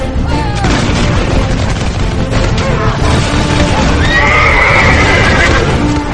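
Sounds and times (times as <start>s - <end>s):
constant roar of battle: 0.2s - 6.1s
cavalry horses pounding hooves across a battlefield: 0.6s - 6.1s
cavalry horses neighing on a battlefield: 2.5s - 6.1s.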